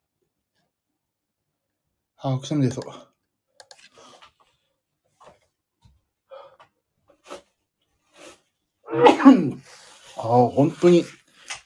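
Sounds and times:
speech: 0:02.2 - 0:03.1, 0:10.3 - 0:11.2
loud sneeze: 0:08.9 - 0:09.7.

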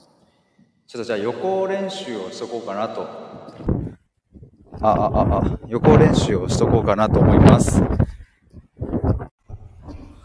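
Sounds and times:
speech: 0:00.9 - 0:03.7, 0:04.8 - 0:08.0
wind gusts buffeting the microphone: 0:03.4 - 0:10.0.

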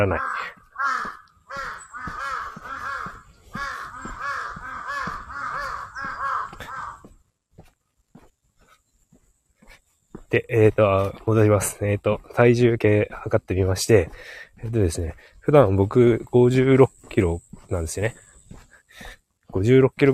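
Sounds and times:
speech: 0:00.0 - 0:01.0, 0:10.3 - 0:18.2, 0:19.0 - 0:20.1
scattered sharp noises: 0:00.0 - 0:07.1
crows cawing while fighting a fox: 0:00.0 - 0:07.2.

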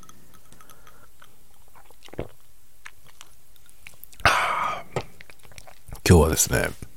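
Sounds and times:
person sipping matcha milk coffee liqueur: 0:00.0 - 0:06.0
speech: 0:06.1 - 0:06.8.

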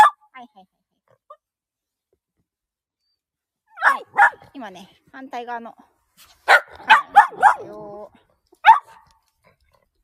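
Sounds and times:
dog barking, demanding a ball throw: 0:00.0 - 0:00.2, 0:03.7 - 0:04.5, 0:06.4 - 0:07.8, 0:08.6 - 0:09.2
speech: 0:00.5 - 0:00.9, 0:04.6 - 0:06.4, 0:07.6 - 0:08.2.

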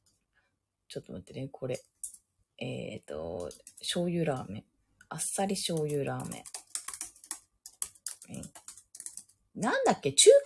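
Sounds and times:
speech: 0:00.9 - 0:02.0, 0:02.6 - 0:06.5, 0:08.3 - 0:08.6, 0:09.6 - 0:10.4
typing on a computer keyboard: 0:03.3 - 0:04.5, 0:05.7 - 0:09.4.

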